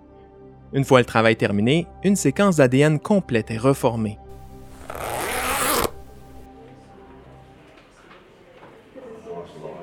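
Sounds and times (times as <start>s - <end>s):
speech: 0.7s - 5.1s
zipper being pulled up: 4.3s - 6.5s.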